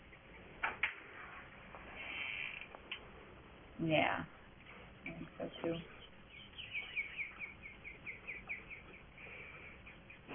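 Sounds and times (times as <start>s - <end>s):
bird chirping at home: 0.0s - 0.7s, 4.5s - 10.3s
soft hiss: 0.0s - 6.2s
speech: 3.8s - 4.4s, 5.0s - 6.0s.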